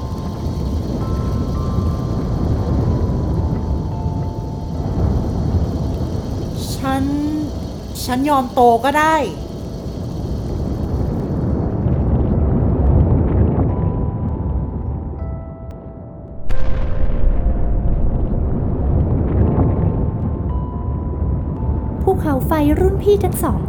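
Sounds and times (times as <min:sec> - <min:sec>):
deep continuous volcanic eruption rumble: 0:00.0 - 0:15.1, 0:16.3 - 0:23.6
speech: 0:08.1 - 0:09.4, 0:22.5 - 0:23.6
loud volcanic explosive burst: 0:16.3 - 0:20.4.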